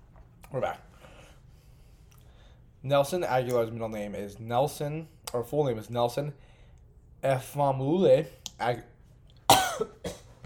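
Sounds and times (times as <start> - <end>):
speech: 0.5 - 0.9, 2.8 - 6.5, 7.2 - 8.9
person coughing harshly: 9.5 - 10.4.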